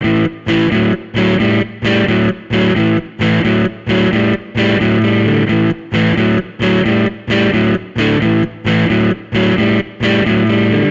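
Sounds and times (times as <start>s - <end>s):
blues guitar in A major: 0.0s - 10.8s.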